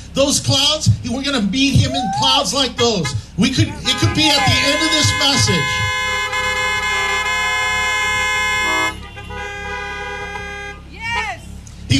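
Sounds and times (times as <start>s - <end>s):
speech: 0.2s - 5.9s
car horn honking: 2.8s - 11.5s.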